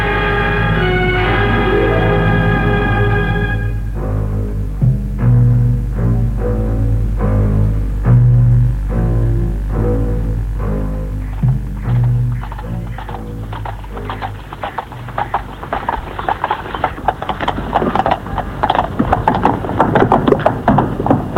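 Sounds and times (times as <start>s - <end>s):
low hum and tonal sound: 0.0s - 21.3s
horse hooves clip-clopping during a ride: 11.2s - 21.3s.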